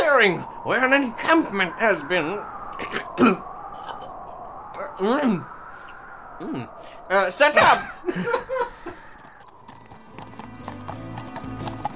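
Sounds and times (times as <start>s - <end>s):
speech: 0.2s - 3.5s, 5.0s - 5.6s, 6.4s - 9.0s
laughter: 7.7s - 9.2s
horses' hooves clip-clopping at sunset in a clearing: 8.9s - 11.9s.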